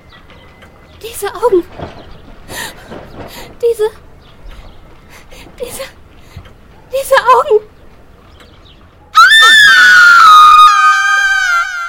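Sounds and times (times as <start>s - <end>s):
speech: 1.1s - 2.0s
woman screaming in fright: 9.2s - 11.8s.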